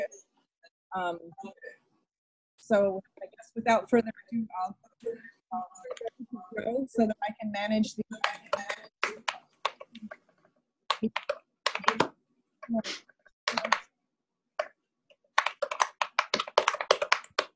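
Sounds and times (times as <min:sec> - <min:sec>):
speech: 0:00.9 - 0:01.8, 0:02.6 - 0:09.3, 0:11.0 - 0:12.0, 0:12.7 - 0:13.8
typing on a computer keyboard: 0:08.1 - 0:10.2, 0:10.9 - 0:12.1, 0:13.5 - 0:13.8, 0:15.4 - 0:17.5.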